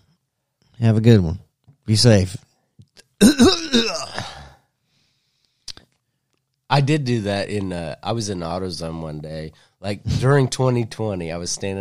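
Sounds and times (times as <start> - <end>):
speech: 0.8 - 2.4, 3.2 - 3.6, 6.7 - 11.7
person making a drawn-out rasping throat-clearing sound: 3.2 - 4.5.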